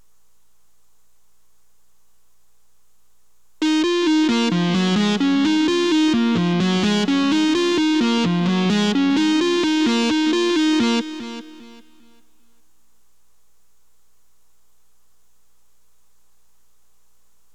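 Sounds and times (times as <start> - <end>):
guitar with delay effect: 3.6 - 12.2.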